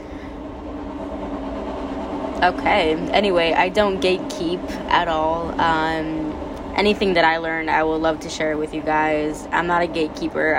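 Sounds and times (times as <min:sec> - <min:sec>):
faint rhythmic rail clatter: 0:00.0 - 0:10.5
train rumbling past: 0:00.0 - 0:10.5
speech: 0:02.4 - 0:06.2, 0:06.8 - 0:10.5.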